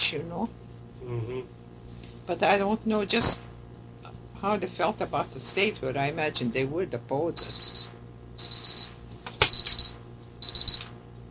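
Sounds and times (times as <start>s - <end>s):
speech: 0.1s - 1.6s, 2.3s - 3.5s, 4.4s - 7.7s
alarm clock beeping in rapid high-pitched pulses: 7.4s - 10.9s.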